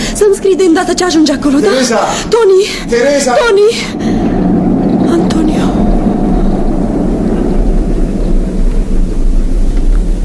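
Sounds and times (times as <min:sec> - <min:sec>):
speech: 0:00.2 - 0:04.3
bus engine rumbling while driving away: 0:02.2 - 0:10.2.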